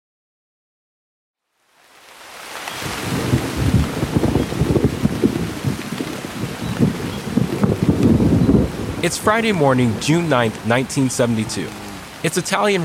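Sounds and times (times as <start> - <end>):
steady rain on a wet Friday morning: 1.4 - 12.8
gusting wind: 2.7 - 12.8
deep rumbles: 3.2 - 12.3
speech: 9.0 - 12.8.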